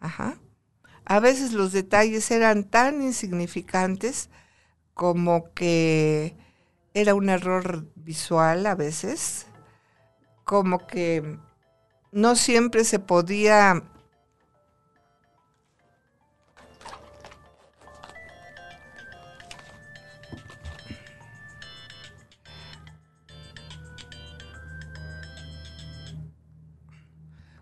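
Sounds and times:
speech: 0.1 - 0.4, 1.1 - 4.4, 5.0 - 9.5, 10.5 - 11.5, 12.1 - 13.9
mobile phone ringing with bright electronic tones: 14.0 - 16.8, 18.2 - 26.3.

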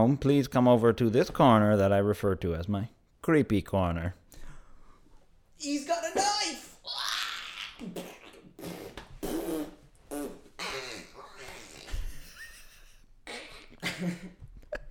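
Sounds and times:
speech: 0.0 - 4.2, 5.6 - 6.6
mouth-made blood splatter noises: 6.9 - 12.0.

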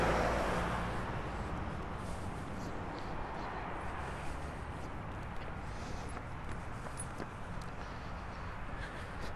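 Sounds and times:
car whooshing past: 0.0 - 1.2
steady outdoor road rumble: 0.0 - 9.3.

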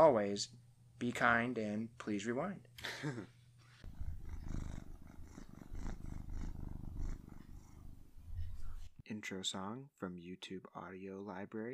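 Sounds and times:
speech: 0.0 - 3.4, 9.1 - 11.7
cat purring: 3.8 - 9.0.

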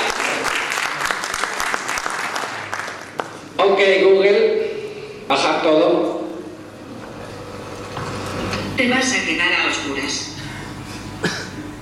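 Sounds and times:
audience applause: 0.0 - 3.5
speech: 3.6 - 4.4, 5.3 - 6.2, 8.8 - 10.3.

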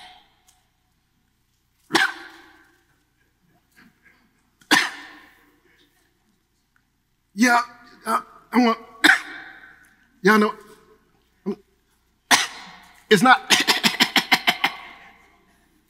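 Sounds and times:
harsh hacking cough: 1.9 - 2.7, 3.8 - 5.6, 9.0 - 9.8, 12.3 - 15.4
speech: 7.4 - 8.9, 10.2 - 10.6, 11.4 - 11.6, 13.1 - 13.6.

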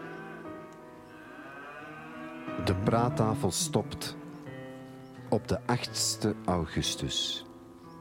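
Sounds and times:
cows mooing outdoors heard through an open door: 0.0 - 4.6
speech: 2.6 - 4.2, 5.3 - 7.5.

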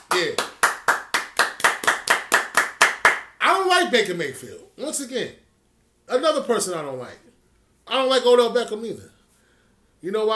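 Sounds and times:
hand clapping: 0.0 - 3.3
speech: 3.8 - 5.4, 6.1 - 7.3, 7.9 - 9.1, 10.0 - 10.3.

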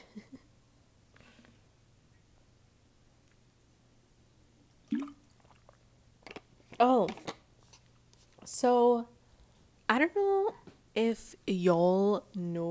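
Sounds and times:
person sipping and gulping water: 4.8 - 6.4
small mouth clicks: 4.9 - 5.6
speech: 6.8 - 7.2, 8.6 - 9.1, 10.0 - 12.6.

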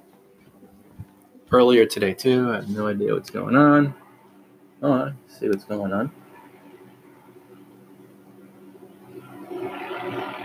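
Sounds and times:
speech: 1.5 - 4.0, 4.8 - 6.2
helicopter flying low overhead: 3.6 - 10.4.

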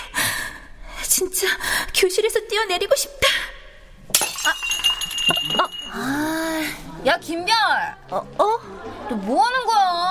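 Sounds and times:
speech: 1.2 - 3.4, 7.0 - 10.1
cup dropping and shattering: 4.1 - 6.0
glass fragments clinking and skittering: 4.1 - 6.1.

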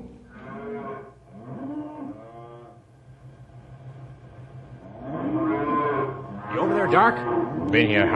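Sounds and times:
cattle mooing: 0.3 - 2.8, 4.9 - 8.1
speech: 6.9 - 8.1.

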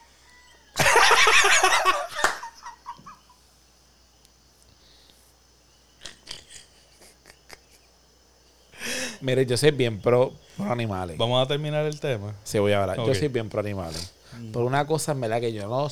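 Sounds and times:
rooster crowing loudly at night: 0.0 - 3.3
faint insect chirping: 0.0 - 15.8
laughter: 0.8 - 3.2
speech: 9.2 - 15.8.

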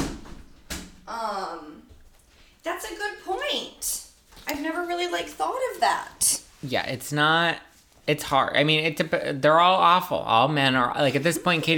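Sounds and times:
door pushed shut with a firm sharp thud: 0.0 - 1.1
soft shuffling: 1.9 - 3.2, 4.1 - 9.3, 11.0 - 11.7
speech: 2.8 - 11.7.

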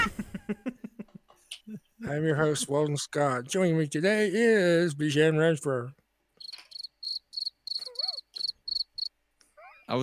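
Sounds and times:
laughter: 0.0 - 3.0
speech: 2.1 - 6.0
cricket chirping: 6.4 - 9.1.

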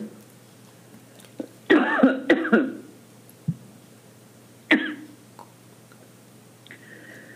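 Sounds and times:
person coughing: 1.7 - 2.9, 4.7 - 5.2.

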